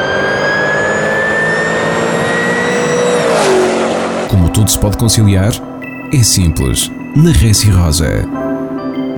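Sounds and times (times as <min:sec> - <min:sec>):
rally car in first gear accelerating at full throttle: 0:00.0 - 0:05.8
speech: 0:04.6 - 0:08.4.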